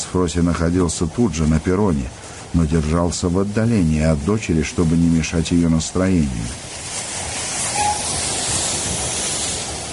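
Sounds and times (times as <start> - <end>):
speech: 0.1 - 6.8
express train arriving at a station platform: 4.4 - 9.9
train brakes squealing: 7.4 - 9.7.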